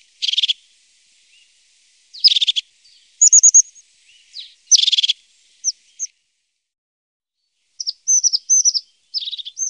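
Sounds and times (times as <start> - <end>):
crested tit buzzy trills and high sliding notes: 0.0 - 0.6, 2.1 - 6.1, 7.8 - 9.6.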